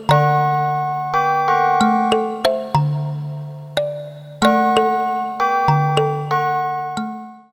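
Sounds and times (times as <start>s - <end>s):
mixed percussion from a synthesizer: 0.1s - 2.8s, 4.4s - 7.4s
sampled chime from a synthesizer: 0.1s - 3.1s, 4.4s - 7.5s.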